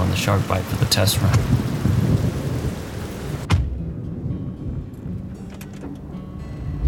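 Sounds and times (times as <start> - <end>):
heavy rain: 0.0 - 4.9
speech: 0.1 - 1.6
deep rumbling: 1.3 - 6.8.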